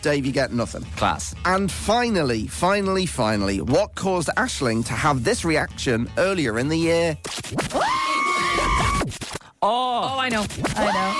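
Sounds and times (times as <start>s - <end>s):
speech: 0.0s - 8.0s, 9.6s - 11.1s
short high-pitched squeals of excitement: 7.7s - 9.1s, 10.8s - 11.1s.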